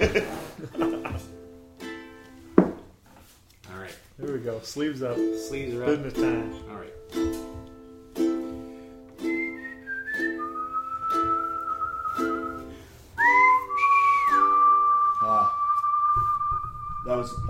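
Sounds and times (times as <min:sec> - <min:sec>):
speech: 0:04.4 - 0:07.4
person whistling a wavering sliding tune: 0:09.2 - 0:17.4.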